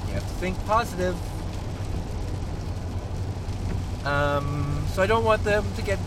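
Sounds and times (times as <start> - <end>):
heavy rain hissing: 0.0 - 6.0
truck engine rumbling while driving: 0.0 - 6.0
speech: 0.4 - 2.0, 4.0 - 6.0.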